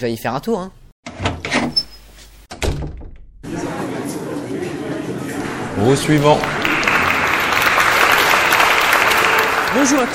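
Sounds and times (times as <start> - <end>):
speech: 0.0 - 0.8, 5.8 - 6.6, 9.8 - 10.1
door opening and swinging shut: 1.0 - 3.4
crowd murmur with indistinct voices in a noisy room: 3.4 - 10.1.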